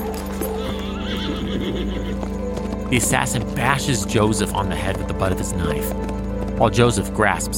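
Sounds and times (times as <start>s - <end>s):
horse hooves clip-clopping while galloping: 0.0s - 7.5s
horse neighing in a high wavering whinny: 0.5s - 2.4s
speech: 2.9s - 7.5s.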